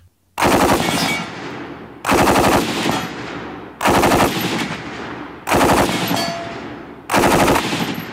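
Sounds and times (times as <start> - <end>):
M240 gas-operated belt-fed machine gun firing 7.62mm rounds: 0.4 - 1.3, 2.1 - 3.1, 3.8 - 4.7, 5.5 - 6.4, 7.1 - 8.1.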